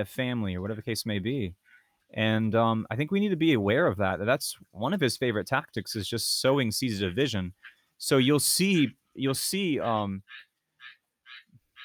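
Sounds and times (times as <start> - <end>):
speech: 0.0 - 10.5
tree frog calling outdoors in the rain: 9.8 - 11.8.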